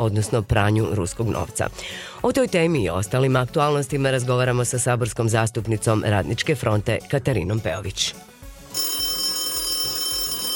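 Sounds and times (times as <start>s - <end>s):
speech: 0.0s - 8.3s
telephone ringing in a radio studio: 8.7s - 10.5s.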